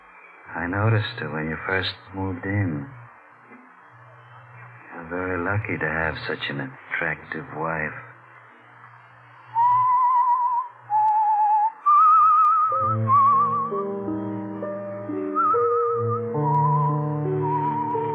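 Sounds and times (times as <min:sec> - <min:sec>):
speech: 0:00.6 - 0:03.0, 0:05.1 - 0:08.1
person whistling a tune: 0:09.5 - 0:14.0, 0:15.2 - 0:18.1
soft instrumental accompaniment: 0:12.7 - 0:18.1.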